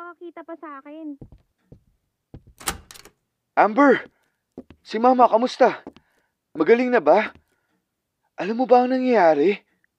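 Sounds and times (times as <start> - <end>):
speech: 0.3 - 1.4, 3.6 - 4.2, 4.9 - 5.9, 6.6 - 7.4, 8.4 - 9.6
door opening with a scraping swing and rattle: 2.4 - 3.1
quick knocks and latch clicks of a door: 2.4 - 3.1.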